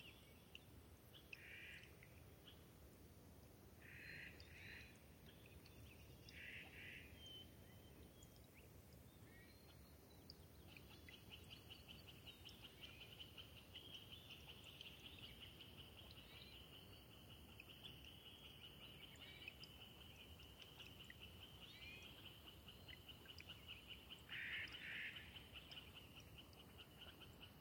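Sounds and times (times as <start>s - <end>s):
soft trickling meltwater streams in a wet subalpine meadow at dawn: 0.0s - 27.6s.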